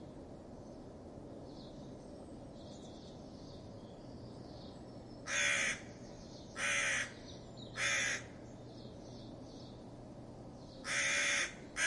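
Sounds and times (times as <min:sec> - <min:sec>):
crow giving alarm calls because of a fox: 0:05.3 - 0:05.9, 0:06.6 - 0:07.2, 0:07.8 - 0:08.4, 0:10.8 - 0:11.8.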